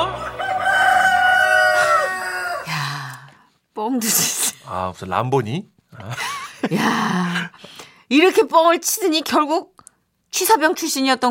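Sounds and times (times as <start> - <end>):
rooster crowing: 0.0 - 2.8
speech: 4.9 - 11.2.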